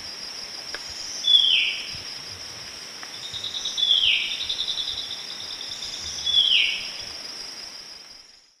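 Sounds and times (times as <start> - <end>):
steady insect drone in South American eastern lowlands: 0.0 - 8.5
white-breasted wood wren Henicorhina leucosticta song in South American eastern lowlands: 0.6 - 2.3, 3.0 - 7.1.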